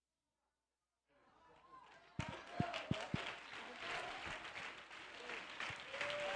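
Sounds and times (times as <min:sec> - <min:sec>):
audience applause: 0:01.9 - 0:06.3.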